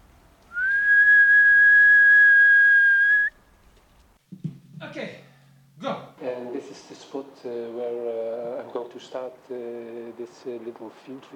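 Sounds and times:
sustained human whistle on one steady high pitch: 0.5s - 3.4s
speech: 6.9s - 11.3s.

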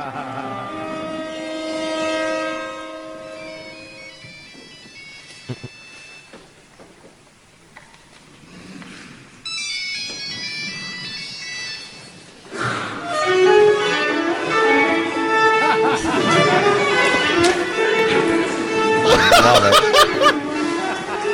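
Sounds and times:
laughter: 0.0s - 1.3s, 5.4s - 5.8s, 15.4s - 21.3s
violin string notes in a hushed room: 0.0s - 6.3s, 9.5s - 21.3s
cell phone ringtone during violin recital: 3.3s - 6.6s, 9.4s - 12.7s.

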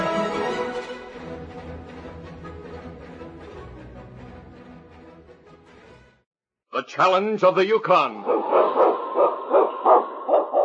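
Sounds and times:
speech: 6.8s - 9.0s
husky sled dog barking: 8.2s - 10.6s.

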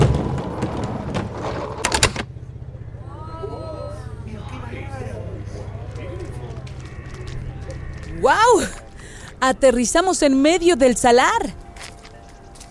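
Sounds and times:
door opening with rattling clunk at the Salar de Uyuni salt flat: 0.0s - 2.3s
steady low engine-like hum: 0.4s - 12.7s
speech: 9.5s - 11.6s.

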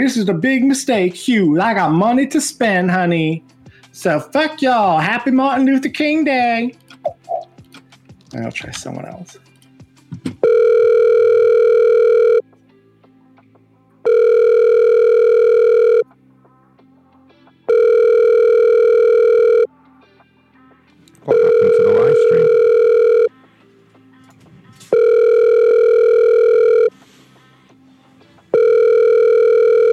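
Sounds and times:
speech: 0.0s - 7.4s, 8.3s - 9.4s
telephone ringing unanswered with electronic buzzing rings: 10.4s - 12.4s, 14.0s - 16.0s, 17.7s - 19.7s, 21.3s - 23.3s, 24.9s - 26.9s, 28.5s - 29.9s.

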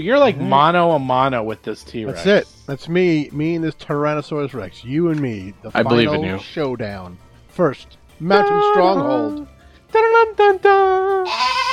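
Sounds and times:
speech: 0.0s - 11.6s
mountain goats bleating: 11.2s - 11.7s.

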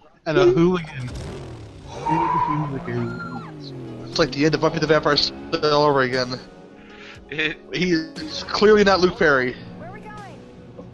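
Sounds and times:
speech: 0.2s - 1.3s, 2.0s - 6.6s, 7.3s - 9.7s
rumbling motorbike engine: 0.2s - 10.9s
motorbike tires skidding over a car: 1.6s - 5.4s.

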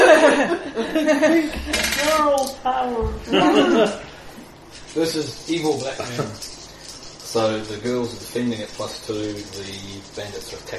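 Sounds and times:
several people chuckling: 0.0s - 1.7s, 3.3s - 4.1s
speech: 0.9s - 4.1s, 4.7s - 6.6s, 7.3s - 10.7s
dice clattering across a hard tabletop: 1.7s - 2.6s, 4.8s - 10.7s.

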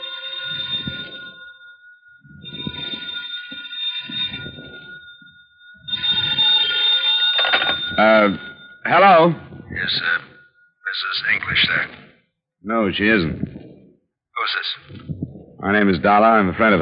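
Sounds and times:
old-fashioned telephone bell ringing: 0.0s - 12.0s
speech: 8.0s - 10.3s, 11.0s - 12.0s, 12.6s - 13.5s, 14.4s - 16.7s.

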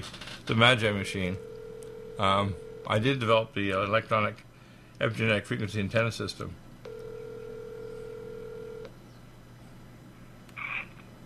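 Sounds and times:
speech: 0.0s - 1.5s, 2.2s - 4.4s, 5.0s - 6.6s
steady telephone dialing tone: 1.1s - 3.0s, 6.9s - 8.9s.

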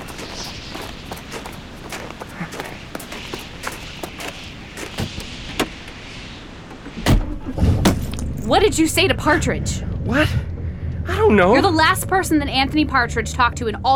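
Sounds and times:
low steady engine rumble: 5.2s - 13.9s
car door shutting: 7.0s - 8.4s
speech: 8.5s - 10.5s, 11.3s - 13.9s.

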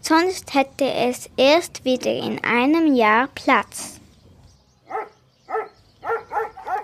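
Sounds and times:
speech: 0.0s - 4.0s
faint hum: 0.0s - 6.8s
dogs barking: 4.8s - 6.8s.

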